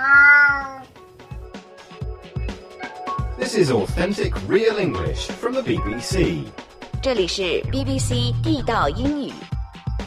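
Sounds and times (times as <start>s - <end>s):
cat meowing: 0.0s - 1.0s
speech: 3.5s - 9.4s.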